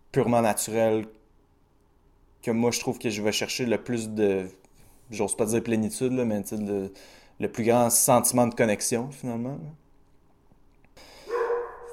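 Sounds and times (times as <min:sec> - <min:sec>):
faint noise: 0:00.0 - 0:11.9
speech: 0:00.2 - 0:01.2, 0:02.4 - 0:09.8
small dog yapping: 0:11.3 - 0:11.9.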